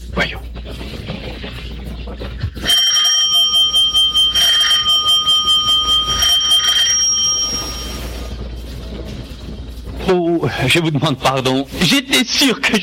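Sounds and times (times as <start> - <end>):
electric doorbell ringing with a shrill rattling trill: 2.6 - 8.3
speech: 10.4 - 12.8.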